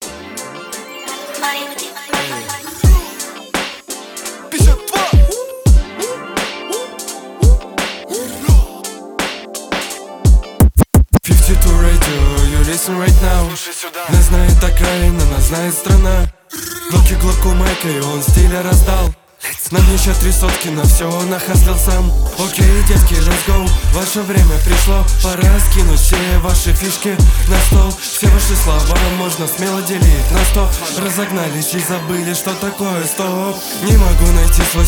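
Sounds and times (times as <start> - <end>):
g-funk music: 0.0 - 16.3, 16.9 - 34.8.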